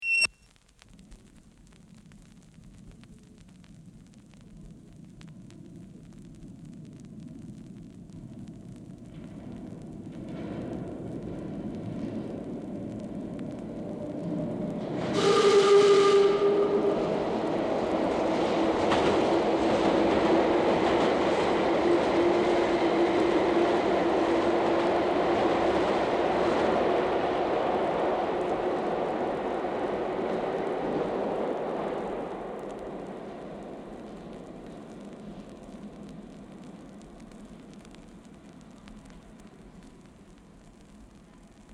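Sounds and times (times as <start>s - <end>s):
train passing in station in tunnel: 10.2s - 36.8s.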